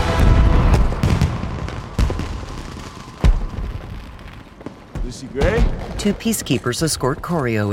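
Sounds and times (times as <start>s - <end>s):
fireworks bursting in the sky: 0.0s - 7.6s
speech: 5.4s - 7.7s.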